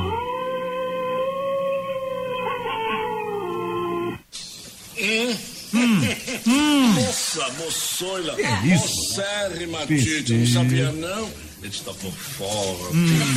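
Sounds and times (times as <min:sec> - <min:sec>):
person imitating a wolf howl with yelps: 0:00.0 - 0:04.2
speech: 0:05.0 - 0:13.3.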